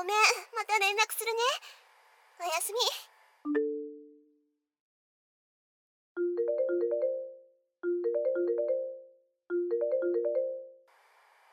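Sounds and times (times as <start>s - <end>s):
speech: 0.0s - 1.8s, 2.4s - 3.7s
melodic phone ringtone: 3.5s - 4.4s, 6.2s - 10.9s.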